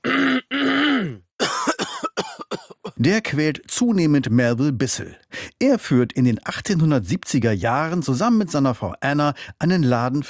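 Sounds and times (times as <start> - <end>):
man's voice imitating a persistent rasping cough: 0.0 - 3.0
speech: 3.0 - 10.2.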